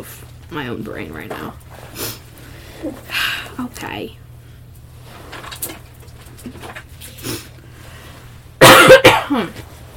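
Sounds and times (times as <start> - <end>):
speech: 0.0 - 2.1, 2.8 - 4.2, 6.4 - 7.4, 9.3 - 9.7
person clearing throat: 8.6 - 9.6.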